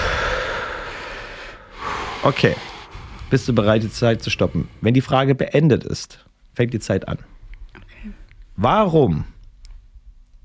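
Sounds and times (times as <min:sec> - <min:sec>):
several people taking a deep breath together: 0:00.0 - 0:03.4
speech: 0:02.2 - 0:02.7, 0:03.3 - 0:07.3, 0:08.0 - 0:09.3.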